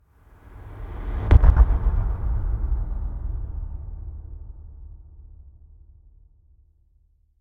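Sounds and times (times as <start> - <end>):
deep impact hits with echo: 1.3 - 3.7.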